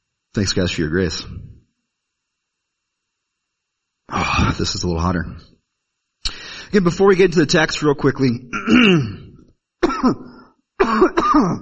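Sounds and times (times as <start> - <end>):
speech: 0.4 - 1.4, 4.3 - 5.5, 6.7 - 9.2, 10.0 - 10.3, 10.9 - 11.6
person clearing throat: 8.5 - 11.6
person coughing: 8.5 - 11.6.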